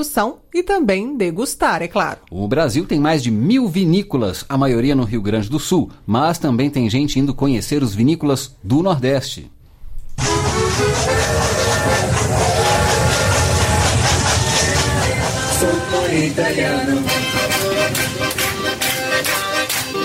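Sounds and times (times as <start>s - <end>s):
speech: 0.0s - 9.6s, 16.1s - 17.3s
train rolling along the rails with low rumble: 10.2s - 19.5s
lively music inside the train carriage: 10.2s - 20.0s
rhythmic hand clapping inside the train carriage: 10.2s - 20.0s.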